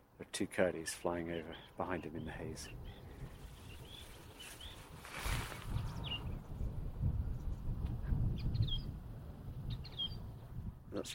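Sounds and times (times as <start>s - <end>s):
speech: 0.2s - 3.3s, 10.9s - 11.1s
song thrush singing whistled phrases: 0.8s - 7.6s, 8.2s - 11.1s
steady low rumble of wind: 1.3s - 11.1s.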